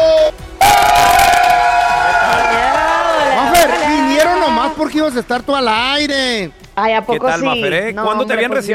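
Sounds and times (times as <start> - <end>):
live audience cheering and applause: 0.6 - 5.2
speech: 5.1 - 8.7.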